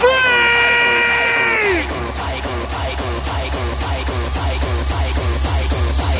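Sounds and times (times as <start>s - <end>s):
hardcore concert crowd screaming: 0.0s - 2.0s
pounding fast heavy hardcore music: 0.0s - 6.1s.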